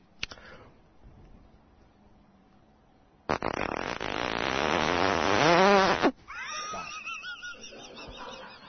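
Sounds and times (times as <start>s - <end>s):
jacket zipper being zipped: 3.3s - 6.2s
laughter: 6.3s - 8.6s.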